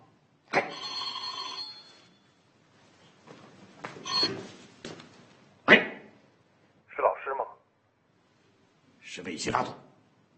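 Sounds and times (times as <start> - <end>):
telephone bell ringing with a metallic trill: 0.7 - 2.4, 4.0 - 4.5
speech: 9.2 - 9.8.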